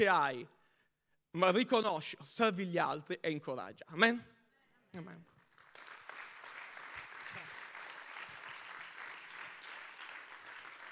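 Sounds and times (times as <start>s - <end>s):
speech: 0.0s - 0.6s, 1.3s - 4.3s, 4.9s - 5.3s
audience applause at a Sunday church gathering: 5.5s - 10.8s.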